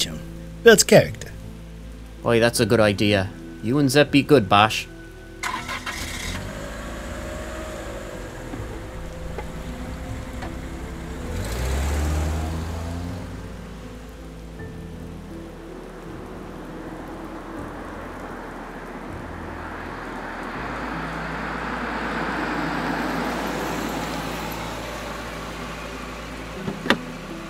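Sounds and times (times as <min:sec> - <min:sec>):
soft hiss of rain: 0:00.0 - 0:27.4
speech: 0:00.6 - 0:01.2, 0:02.2 - 0:04.9
small car engine cranking, starting and driving off: 0:05.4 - 0:14.6, 0:19.4 - 0:27.4.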